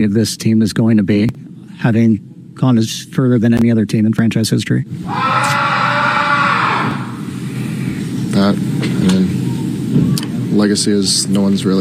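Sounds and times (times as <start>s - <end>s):
speech: 0.0s - 5.6s, 8.4s - 11.8s
person shrieking in a sports team clubhouse: 5.0s - 7.4s
steady roar of noise: 5.0s - 7.9s.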